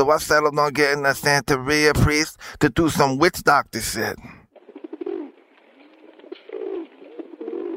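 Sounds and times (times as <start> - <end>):
speech: 0.0 - 4.4
pigeon cooing: 4.6 - 7.7.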